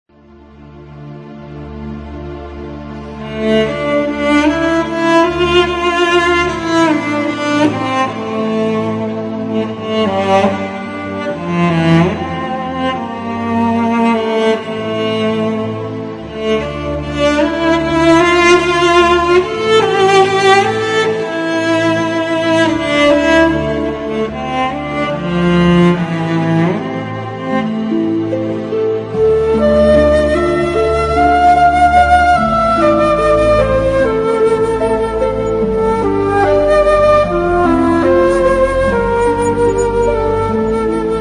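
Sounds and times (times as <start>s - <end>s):
sad background music: 0.1s - 41.2s.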